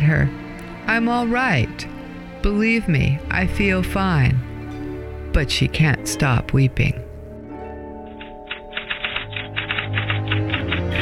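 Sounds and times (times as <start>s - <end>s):
speech: 0.1s - 4.5s, 5.3s - 7.0s
typewriter typing: 8.1s - 11.0s.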